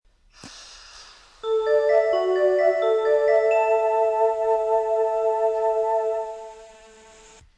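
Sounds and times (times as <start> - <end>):
train station departure melody: 1.4 - 7.4.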